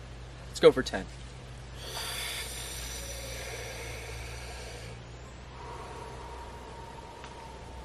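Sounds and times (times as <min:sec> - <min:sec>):
speech: 0:00.6 - 0:01.2
deep breathing during a guided breathing exercise: 0:01.7 - 0:07.8.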